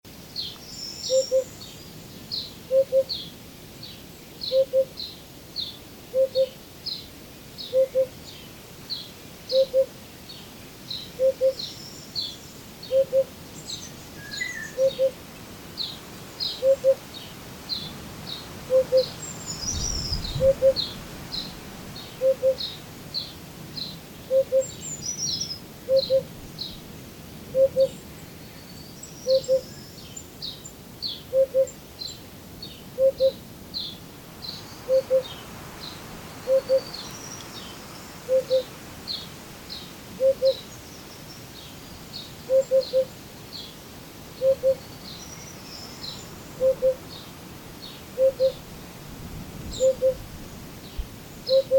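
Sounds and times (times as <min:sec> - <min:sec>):
hoopoe calling: 0:01.1 - 0:01.6, 0:02.7 - 0:03.2, 0:04.5 - 0:05.0, 0:06.1 - 0:06.6, 0:07.6 - 0:08.2, 0:09.5 - 0:10.0, 0:11.2 - 0:11.8, 0:12.8 - 0:13.4, 0:14.1 - 0:17.2, 0:17.8 - 0:22.8, 0:24.2 - 0:24.8, 0:25.8 - 0:26.3, 0:27.5 - 0:28.0, 0:29.3 - 0:29.7, 0:31.3 - 0:31.8, 0:33.0 - 0:33.4, 0:34.8 - 0:35.5, 0:36.4 - 0:37.6, 0:38.2 - 0:39.2, 0:40.1 - 0:40.7, 0:42.4 - 0:43.2, 0:44.4 - 0:44.9, 0:46.5 - 0:47.2, 0:48.1 - 0:48.7, 0:49.7 - 0:50.2, 0:51.5 - 0:51.7.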